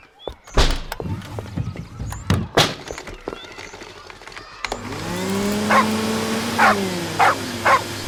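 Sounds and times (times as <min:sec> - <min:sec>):
vacuum cleaner running with a steady whine: 0:03.4 - 0:08.0
dog barking at a vacuum cleaner: 0:05.7 - 0:06.0, 0:06.6 - 0:07.9.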